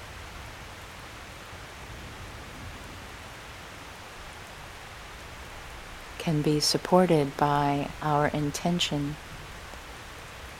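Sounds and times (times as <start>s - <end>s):
steady rain falling: 0.0s - 10.5s
speech: 6.2s - 9.3s.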